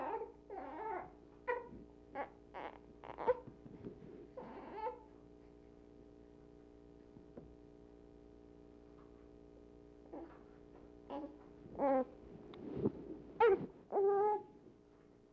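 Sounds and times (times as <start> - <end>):
small soft whimpers: 0.0 - 3.5, 4.4 - 5.1, 11.1 - 12.2, 13.4 - 14.6
steady low electrical hum: 0.0 - 15.3.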